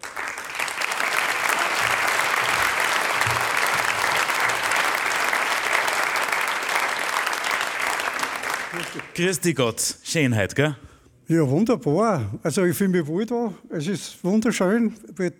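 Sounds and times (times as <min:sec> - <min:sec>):
sizable audience applauding in St. Gallen: 0:00.0 - 0:09.2
speech: 0:09.2 - 0:15.3.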